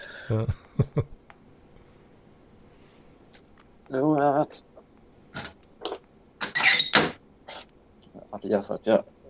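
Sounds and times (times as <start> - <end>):
laughter: 0.2 - 1.1
speech: 0.3 - 1.2, 3.9 - 4.7, 8.3 - 9.2
window being closed with squeaky scraping creaks: 5.4 - 7.7.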